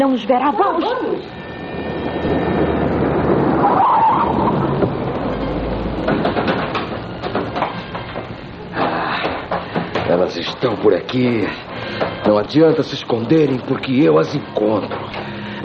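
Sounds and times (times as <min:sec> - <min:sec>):
speech: 0:00.0 - 0:01.9, 0:10.2 - 0:15.6
broad road noise: 0:00.0 - 0:15.6
car engine rumbling: 0:01.1 - 0:08.8
tire squeal: 0:01.3 - 0:07.2.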